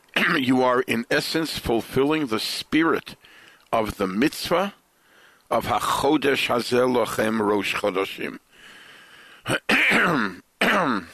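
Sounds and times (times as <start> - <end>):
person clearing throat: 0.2 - 0.4, 9.5 - 11.1
speech: 0.2 - 4.8, 5.5 - 8.5, 9.4 - 11.1.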